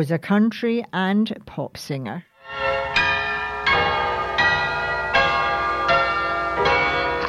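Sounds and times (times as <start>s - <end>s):
speech: 0.0s - 2.6s
mission bells ringing: 2.4s - 7.2s
steady tonal background: 2.4s - 7.2s.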